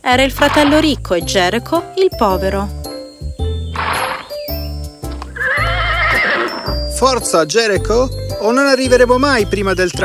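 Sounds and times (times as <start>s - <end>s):
speech: 0.0s - 2.8s, 7.0s - 10.0s
low rhythmic background: 0.0s - 10.0s
horse about to be ridden neighing: 3.8s - 4.4s, 5.3s - 6.8s.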